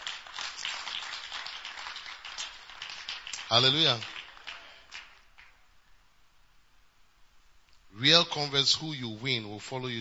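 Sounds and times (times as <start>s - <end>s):
audience clapping hands: 0.0s - 5.6s
speech: 3.5s - 4.2s, 8.0s - 9.9s.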